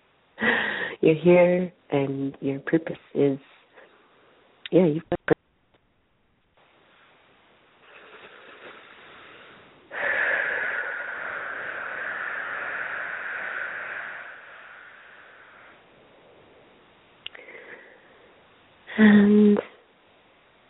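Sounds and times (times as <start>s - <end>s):
slow deep breathing during a guided breathing exercise: 0.4s - 1.0s, 7.8s - 18.5s
speech: 0.4s - 3.6s, 4.7s - 5.2s.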